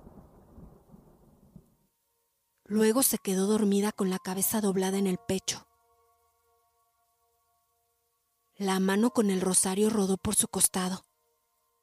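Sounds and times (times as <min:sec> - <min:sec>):
distant thunder rumbling: 0:00.0 - 0:01.7
speech: 0:02.7 - 0:05.7, 0:08.6 - 0:11.1.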